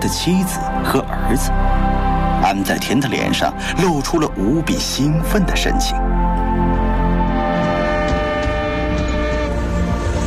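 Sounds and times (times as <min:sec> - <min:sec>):
speech: 0:00.0 - 0:06.4
train horn blast as train arrives: 0:06.6 - 0:10.2.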